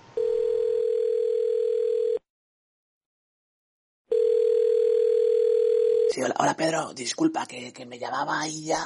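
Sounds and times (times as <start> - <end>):
telephone ringback tone while placing a call: 0.2 - 2.2, 4.1 - 6.1
speech: 6.2 - 8.8.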